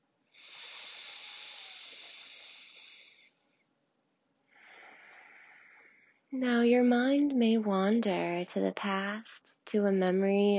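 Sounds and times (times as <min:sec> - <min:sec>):
breath exhaled through the nose: 0:00.4 - 0:03.4, 0:04.6 - 0:06.2
speech: 0:06.3 - 0:10.5.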